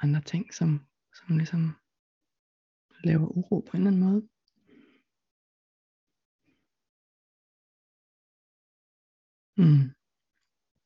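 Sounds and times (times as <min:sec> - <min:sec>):
speech: 0:00.0 - 0:01.8, 0:03.0 - 0:04.3, 0:09.6 - 0:10.0
person exhaling with a low grunt while settling into a chair: 0:09.6 - 0:09.9.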